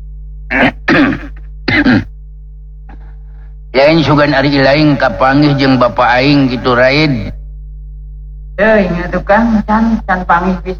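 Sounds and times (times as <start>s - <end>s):
coughing: 0.5s - 2.2s
throat clearing: 0.5s - 2.2s, 2.9s - 3.2s
speech: 3.8s - 7.4s, 8.6s - 10.7s.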